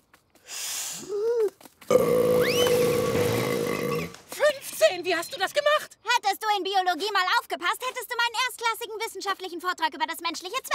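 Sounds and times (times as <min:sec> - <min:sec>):
person burping with a long loud rumbling belch: 0:01.9 - 0:04.1
speech: 0:05.1 - 0:05.9, 0:06.5 - 0:10.7.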